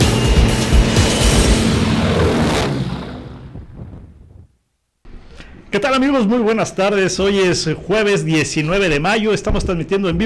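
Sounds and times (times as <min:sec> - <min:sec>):
aircraft engine roar during takeoff roll: 0:00.0 - 0:04.5
speech: 0:05.7 - 0:10.2.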